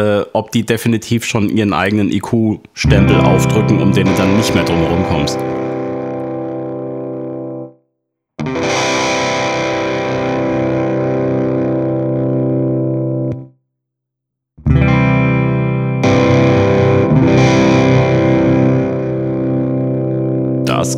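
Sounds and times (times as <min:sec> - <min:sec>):
speech: 0:00.0 - 0:05.6
overdriven electric guitar chords through a floor overdrive pedal: 0:02.9 - 0:07.8, 0:08.4 - 0:13.5, 0:14.6 - 0:20.9.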